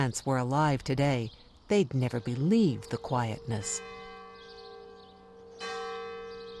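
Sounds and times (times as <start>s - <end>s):
speech: 0.0s - 4.0s
faint high chirping like birds: 0.0s - 6.5s
church bell ringing in a village: 2.4s - 6.5s.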